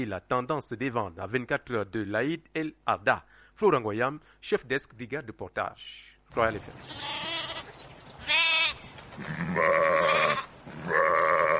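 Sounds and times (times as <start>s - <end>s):
speech: 0.0s - 7.3s, 9.2s - 11.1s
sheep bleating in a busy livestock market: 6.8s - 11.5s.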